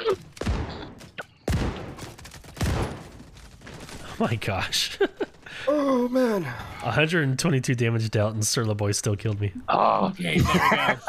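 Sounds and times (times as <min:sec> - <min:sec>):
speech: 0:00.1 - 0:00.3, 0:04.2 - 0:11.0
pistol gunfire in a video game: 0:00.3 - 0:03.3
laughter: 0:04.8 - 0:05.6, 0:10.2 - 0:11.0.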